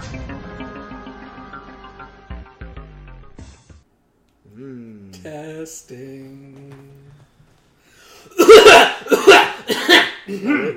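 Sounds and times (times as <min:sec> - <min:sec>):
speech: 0:05.2 - 0:06.7, 0:09.7 - 0:10.7
loud harsh coughs: 0:08.2 - 0:10.7.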